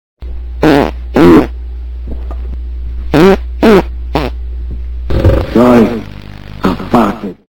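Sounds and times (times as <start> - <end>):
fart: 0.6 - 1.5, 3.1 - 4.4, 6.6 - 7.2.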